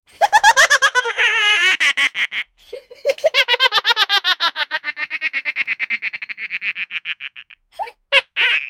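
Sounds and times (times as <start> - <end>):
cartoon laugh: 0.1 - 8.6.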